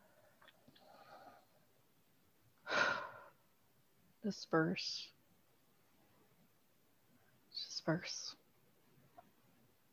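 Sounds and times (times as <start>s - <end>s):
deep inhale during a guided breathing exercise: 0.0s - 1.6s, 2.6s - 3.4s
speech: 4.2s - 5.2s, 7.9s - 8.4s.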